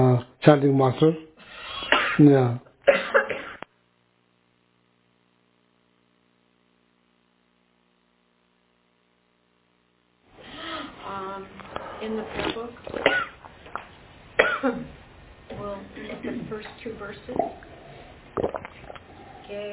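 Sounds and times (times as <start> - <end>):
speech: 0.2 - 1.3, 2.2 - 2.7, 16.2 - 17.6, 19.5 - 19.7
person coughing: 1.7 - 3.7, 12.9 - 13.4, 14.4 - 14.9.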